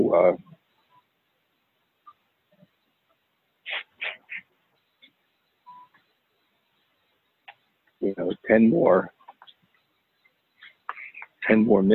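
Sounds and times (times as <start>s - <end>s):
speech: 0.0s - 0.5s, 8.0s - 9.2s, 11.5s - 11.9s
sharp explosive loud sneezes in a drugstore: 3.6s - 4.4s
softer scattered noises in a drugstore: 3.6s - 5.2s, 9.2s - 11.9s.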